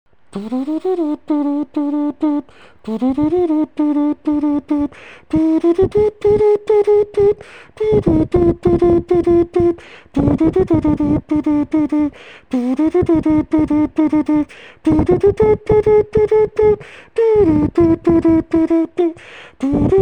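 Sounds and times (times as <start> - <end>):
imitation of brass wind instruments, possibly saxophone: 0.4 - 20.0.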